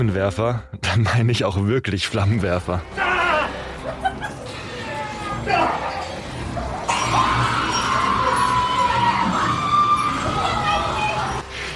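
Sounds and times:
speech: 0.0s - 3.2s
laughter: 3.2s - 6.6s
visitors screaming at a haunted house horror attraction: 4.5s - 11.5s.

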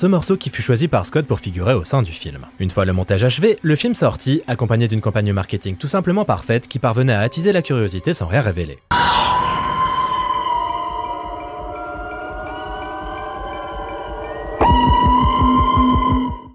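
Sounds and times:
speech: 0.0s - 9.5s
loud droning alarm-like trailer tone with horn-like harmonics: 8.9s - 16.5s
throbbing low rhythm with heavy pulses: 10.9s - 16.5s.

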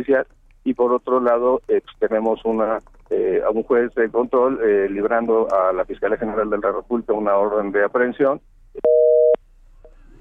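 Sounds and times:
speech: 0.0s - 9.0s
faint noise: 0.0s - 10.1s
telephone busy tone after a dropped phone call: 8.8s - 9.4s.

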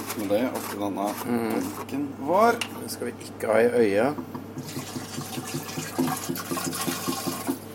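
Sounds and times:
speech: 0.2s - 6.5s
water pouring into a jug of purple pipe cleaning fluid: 4.6s - 7.6s.

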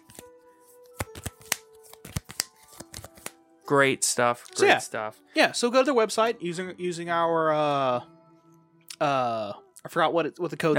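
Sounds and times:
trading cards in matte art sleeves being hand shuffled: 0.0s - 3.4s
speech: 3.7s - 8.2s, 9.0s - 10.7s.

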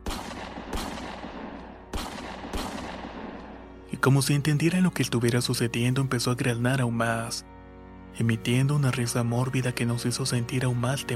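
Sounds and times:
gunshots hitting a tree trunk with tail: 0.0s - 3.8s
speech: 4.0s - 7.5s, 8.2s - 11.1s.

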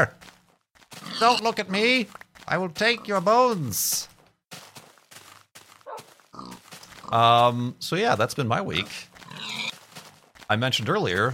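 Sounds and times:
speech: 0.0s - 0.3s, 1.2s - 4.1s, 7.1s - 9.1s, 10.5s - 11.3s
pig grunting: 1.0s - 1.6s, 5.9s - 7.3s, 8.7s - 9.8s.

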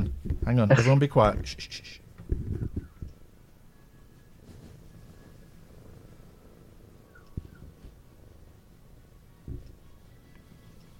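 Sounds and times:
speech: 0.5s - 2.0s
cat purring in a person's lap: 4.1s - 10.9s.

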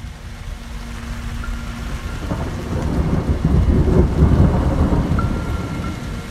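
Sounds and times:
deep thunder rumbling in a summer thunderstorm: 0.0s - 6.2s
heavy rain in a summer thunderstorm: 0.0s - 6.2s.

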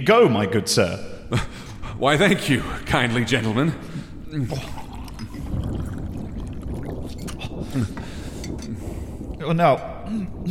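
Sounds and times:
speech: 0.0s - 4.8s, 7.8s - 8.0s, 9.4s - 10.4s
water pouring into a cup: 3.9s - 9.0s.

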